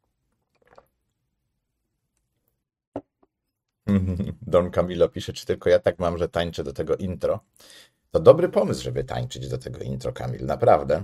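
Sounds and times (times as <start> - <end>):
person sipping water: 0.3 - 1.1
person gulping water: 0.4 - 1.1
speech: 4.0 - 11.0.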